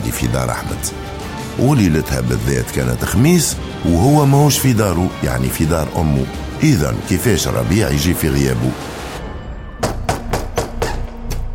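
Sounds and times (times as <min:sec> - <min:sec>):
speech: 0:00.1 - 0:09.0
knocking on a door: 0:09.8 - 0:11.2.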